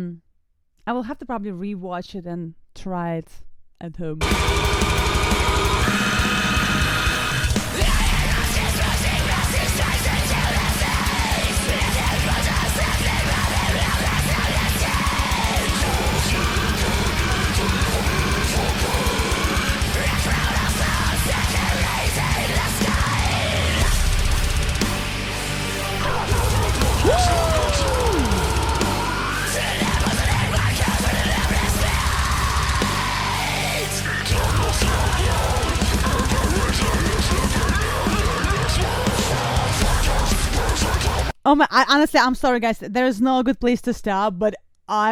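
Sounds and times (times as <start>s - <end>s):
speech: 0.0s - 0.2s, 0.8s - 5.3s, 41.8s - 45.1s
pounding drums: 4.2s - 33.3s, 34.2s - 41.3s
dense heavily distorted deathcore music: 4.2s - 41.3s
heavily distorted guitars: 4.2s - 41.3s
harsh growled and screamed vocals: 4.3s - 24.3s, 25.8s - 41.3s.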